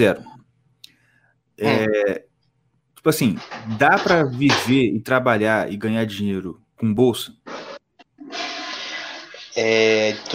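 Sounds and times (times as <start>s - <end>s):
speech: 0.0s - 0.3s, 1.6s - 2.3s, 3.0s - 7.7s, 9.6s - 10.3s
toilet flushing: 7.5s - 10.3s.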